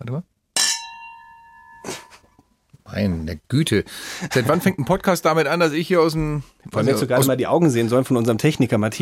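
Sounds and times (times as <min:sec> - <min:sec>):
speech: 0:00.1 - 0:00.3, 0:03.0 - 0:09.0
glasses clinking together in a toast: 0:00.6 - 0:02.4.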